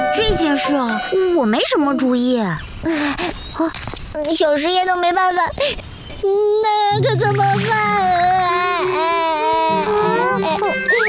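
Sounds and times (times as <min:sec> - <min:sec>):
speech: 0:00.2 - 0:08.3
child crying: 0:06.3 - 0:11.0.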